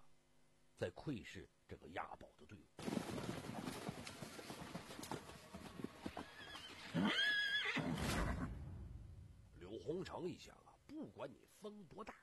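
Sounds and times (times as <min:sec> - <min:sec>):
speech: 0:00.8 - 0:03.8, 0:09.8 - 0:12.2
hollow clip-clop of horse hooves running back and forth: 0:02.8 - 0:07.1
horse neighing and whinnying: 0:06.1 - 0:08.5.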